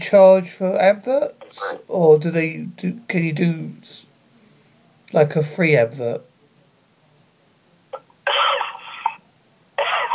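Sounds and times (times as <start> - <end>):
speech: 0.0 - 4.1, 5.1 - 6.3
person coughing: 8.3 - 9.2, 9.8 - 10.1.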